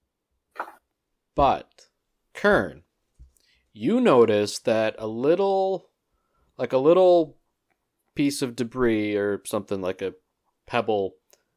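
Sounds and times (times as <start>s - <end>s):
person imitating a sneeze: 0.6s - 0.8s
speech: 1.4s - 2.8s, 3.8s - 5.9s, 6.6s - 7.4s, 8.2s - 11.2s.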